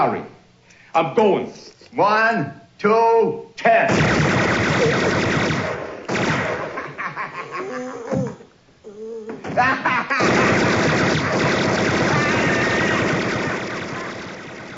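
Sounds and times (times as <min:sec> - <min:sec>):
speech: 0:00.0 - 0:00.4, 0:01.0 - 0:05.8, 0:09.6 - 0:10.7
gunfire in a film scene: 0:03.9 - 0:07.0, 0:10.2 - 0:14.7
laughter: 0:06.7 - 0:08.4, 0:09.5 - 0:10.5.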